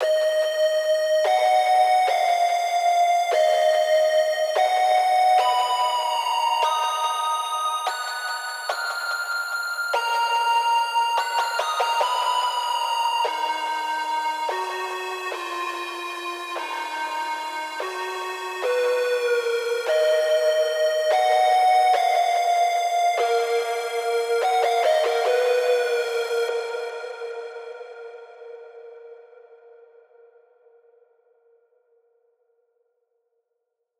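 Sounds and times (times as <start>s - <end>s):
analog synth lead melody in D sharp minor: 0.0s - 9.2s, 9.9s - 29.1s.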